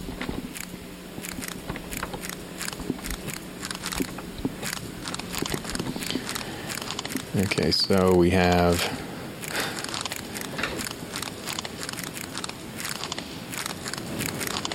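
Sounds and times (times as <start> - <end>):
slowed-down butterfly wing beats: 0.0 - 14.7
speech: 7.4 - 9.0.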